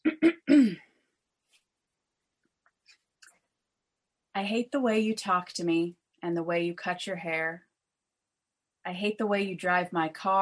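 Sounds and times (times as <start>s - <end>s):
woman clearing her throat before reading aloud from a notebook: 0.0s - 0.8s
speech: 4.4s - 7.7s, 8.8s - 10.4s.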